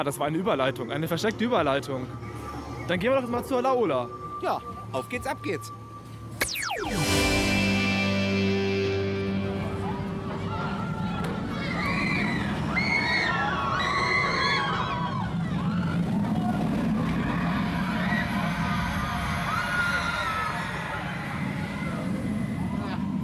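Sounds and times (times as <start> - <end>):
speech: 0.0 - 5.8
murmur of a bustling amusement park crowd: 2.0 - 5.0, 7.0 - 23.2
roller coaster roaring past in a descending whoosh at an amusement park: 10.1 - 23.2.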